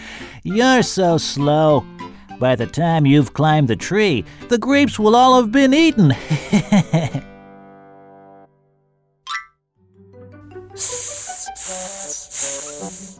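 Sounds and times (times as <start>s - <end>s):
speech: 0.4s - 7.3s
laughter: 6.1s - 7.2s
voice imitating a pipe snake's hiss: 10.8s - 13.1s.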